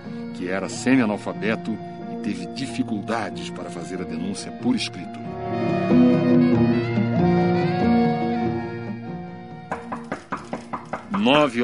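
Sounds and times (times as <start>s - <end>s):
speech: 0.1s - 6.6s, 11.2s - 11.6s
sustained orchestral music: 0.4s - 11.6s
man knocking on a lawyer's wooden door: 9.7s - 11.6s.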